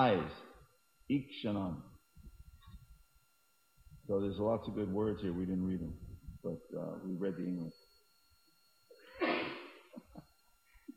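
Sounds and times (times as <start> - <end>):
speech: 0.0 - 0.4, 1.1 - 1.9, 4.1 - 7.8
sharp forceful sneeze: 9.1 - 9.8.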